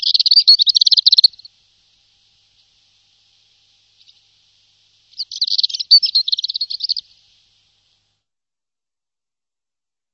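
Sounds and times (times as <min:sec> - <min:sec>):
bird chattering call: 0:00.0 - 0:01.5, 0:05.1 - 0:07.0.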